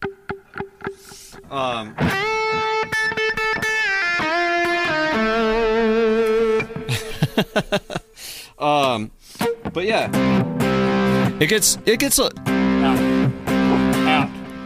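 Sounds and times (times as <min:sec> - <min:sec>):
electric guitar with quarter-note delay and spring reverb playing notes and chords: 0:00.0 - 0:07.2, 0:09.4 - 0:14.6
speech: 0:01.5 - 0:02.8, 0:07.6 - 0:08.0, 0:09.8 - 0:10.5, 0:11.4 - 0:13.1
laughter: 0:06.9 - 0:08.2.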